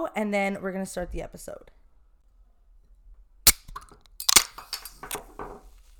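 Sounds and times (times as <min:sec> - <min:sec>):
speech: 0:00.0 - 0:01.8
drink can being cracked open with a brief fizzy release: 0:03.5 - 0:05.3.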